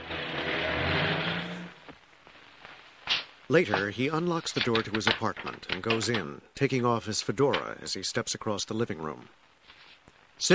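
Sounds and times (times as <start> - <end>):
car driving off after dropping a passenger: 0.0 - 1.8
speech: 3.5 - 9.4, 10.4 - 10.5.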